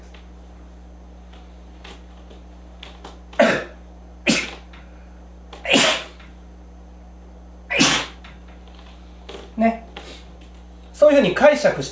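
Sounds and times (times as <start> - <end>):
person sneezing: 3.4 - 4.7, 5.6 - 6.3, 7.7 - 8.3
speech: 11.2 - 11.8.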